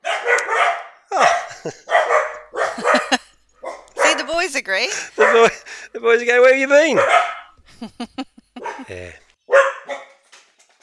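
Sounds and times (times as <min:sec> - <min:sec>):
dog barking: 0:00.0 - 0:04.3, 0:05.1 - 0:05.6, 0:06.9 - 0:07.6, 0:08.6 - 0:10.2
laughter: 0:01.1 - 0:02.0, 0:02.6 - 0:03.5, 0:04.8 - 0:06.0, 0:07.6 - 0:09.3
speech: 0:01.6 - 0:02.0, 0:04.4 - 0:08.2, 0:08.9 - 0:09.2.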